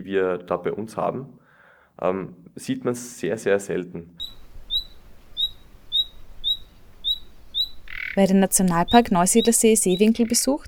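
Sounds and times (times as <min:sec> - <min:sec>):
speech: 0:00.0 - 0:01.4, 0:02.0 - 0:04.4, 0:08.2 - 0:10.6
common nightingale singing clear rising whistled notes: 0:04.2 - 0:10.6.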